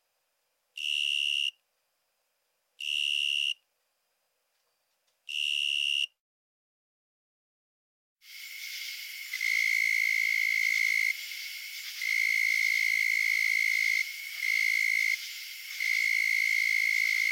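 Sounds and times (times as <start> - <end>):
narrow-winged tree cricket trilling: 0.8 - 1.6, 2.8 - 3.6, 8.2 - 17.3.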